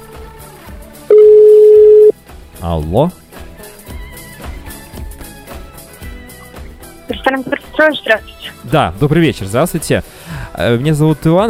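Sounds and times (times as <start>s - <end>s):
telephone ringback tone during an outgoing call to a restaurant in Moscow: 1.1s - 2.1s
speech: 2.6s - 3.2s, 7.3s - 11.4s.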